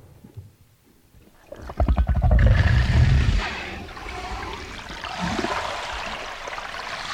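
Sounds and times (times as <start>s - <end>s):
grey whale vocalizing: 1.5s - 6.2s.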